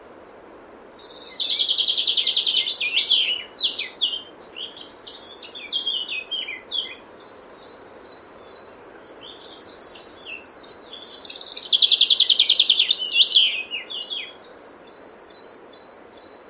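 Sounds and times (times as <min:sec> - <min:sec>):
common chaffinch song: 0:00.0 - 0:16.4
soft scattered bird chirps: 0:00.0 - 0:16.4.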